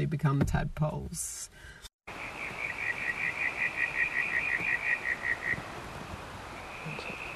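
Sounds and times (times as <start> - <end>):
speech: 0.0 - 1.8
constant hiss of outdoor noise: 0.0 - 7.3
frog calling in pulsing notes: 2.1 - 5.7, 6.5 - 7.3.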